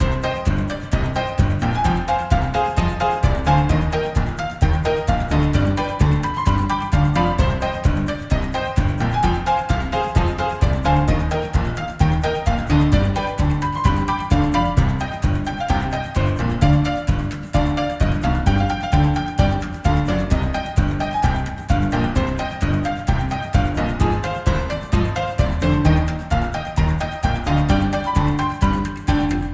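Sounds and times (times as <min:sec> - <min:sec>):
old saloon music: 0:00.0 - 0:29.5.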